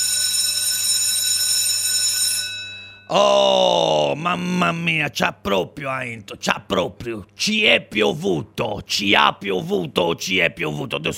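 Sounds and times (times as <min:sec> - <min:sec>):
school bell ringing with a bright metallic tone: 0:00.0 - 0:03.1
speech: 0:03.1 - 0:11.1.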